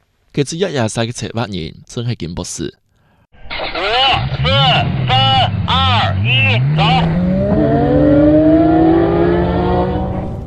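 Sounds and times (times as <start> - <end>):
speech: 0.4 - 2.8, 4.0 - 8.2
race car engines roaring at race start in a deep pit: 3.6 - 10.4.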